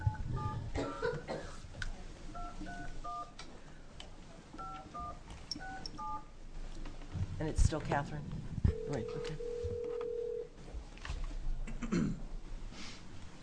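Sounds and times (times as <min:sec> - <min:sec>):
low hum: 0:00.0 - 0:13.4
cough-like noise: 0:00.7 - 0:01.7, 0:11.7 - 0:12.3
telephone keypad dialing tones: 0:04.6 - 0:06.3, 0:08.7 - 0:10.4
speech: 0:07.4 - 0:09.5.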